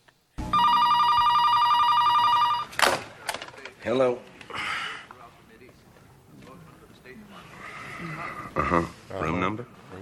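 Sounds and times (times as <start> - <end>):
telephone ringing with bright electronic tone: 0.4 - 2.8
speech: 3.8 - 4.3, 8.7 - 9.0.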